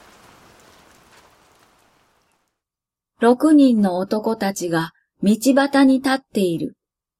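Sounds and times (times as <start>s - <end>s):
steady rain pouring down: 0.0s - 2.6s
speech: 3.2s - 6.8s.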